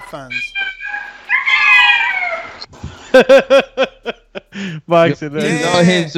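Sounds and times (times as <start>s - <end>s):
speech: 0.1s - 0.6s, 3.1s - 6.1s
cat meowing: 0.6s - 2.7s
laughter: 2.7s - 6.1s.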